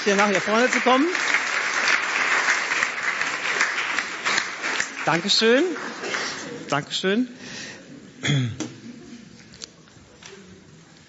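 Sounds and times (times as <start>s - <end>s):
speech: 0.0s - 1.4s, 5.0s - 6.0s, 6.7s - 7.6s, 8.2s - 8.7s
audience applauding: 0.0s - 6.7s.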